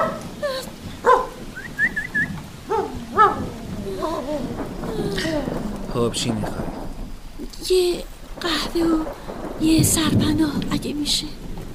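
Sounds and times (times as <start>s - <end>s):
dog barking: 0.0s - 0.3s, 1.0s - 1.4s, 2.7s - 3.5s
steady rain-like hiss: 0.0s - 11.7s
speech: 6.0s - 6.7s, 7.7s - 11.4s.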